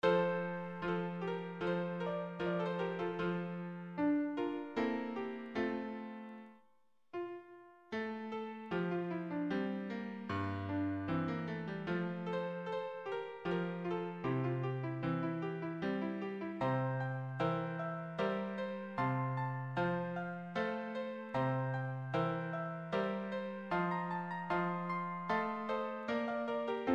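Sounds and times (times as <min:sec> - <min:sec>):
piano and solo voice in moderate tempo: 0:00.0 - 0:06.4, 0:08.6 - 0:26.9.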